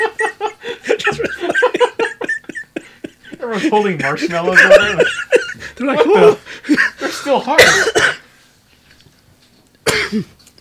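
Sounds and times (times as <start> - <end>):
laughter: 0.0 - 7.5
person coughing with a rough throaty rasp: 0.9 - 1.7, 7.5 - 8.3, 9.8 - 10.4
speech: 3.6 - 5.2, 10.1 - 10.4.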